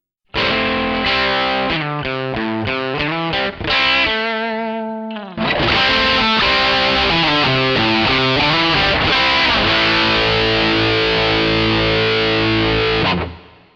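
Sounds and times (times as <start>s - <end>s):
crunchy distorted electric guitar riffs through an overdrive effect: 0.3s - 13.7s.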